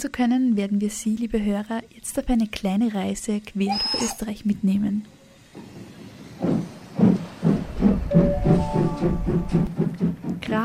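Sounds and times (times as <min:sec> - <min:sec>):
speech: 0:00.0 - 0:05.8, 0:08.1 - 0:10.6
train hiss: 0:01.8 - 0:10.6
train rolling through a station platform with a steady clattering rhythm: 0:05.5 - 0:10.6.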